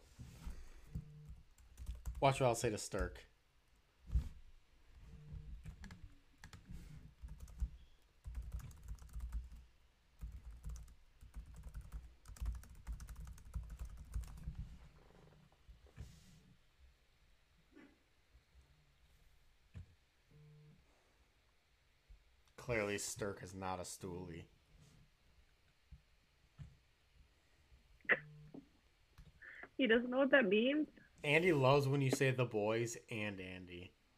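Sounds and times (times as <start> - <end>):
fast typing on a computer keyboard: 1.2 - 2.2, 5.6 - 9.6, 10.2 - 14.6
speech: 2.2 - 3.3, 23.0 - 24.6, 29.8 - 34.0.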